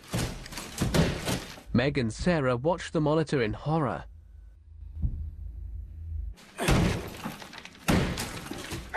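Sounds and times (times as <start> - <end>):
claw hammer smashing a plasterboard wall of a panic room: 0.0 - 1.6, 6.6 - 8.9
plasterboard debris crumbling and breaking: 0.0 - 1.7, 6.4 - 8.9
speech: 1.8 - 4.1
low steady hum: 3.8 - 6.4.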